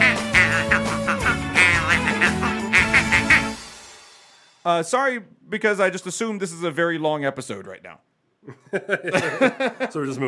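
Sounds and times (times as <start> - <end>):
duck quacking: 0.0 - 3.6
speech: 4.7 - 10.2
laughter: 8.5 - 10.0.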